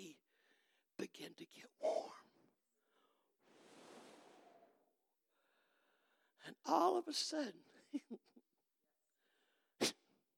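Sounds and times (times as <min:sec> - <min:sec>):
speech: 0:01.0 - 0:02.3, 0:06.4 - 0:08.3
person imitating a sneeze: 0:09.8 - 0:10.0.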